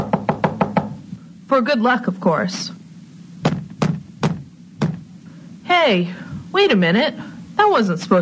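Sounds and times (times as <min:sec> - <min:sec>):
knocking on a wall: 0:00.0 - 0:01.0, 0:03.4 - 0:05.0
faint low hum: 0:00.0 - 0:08.2
speech: 0:01.5 - 0:02.8, 0:05.8 - 0:08.2.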